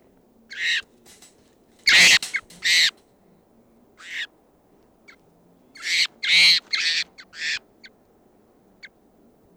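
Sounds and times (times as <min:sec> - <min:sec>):
wild birds calling with harsh raspy calls: 0:00.5 - 0:02.9, 0:05.8 - 0:07.6.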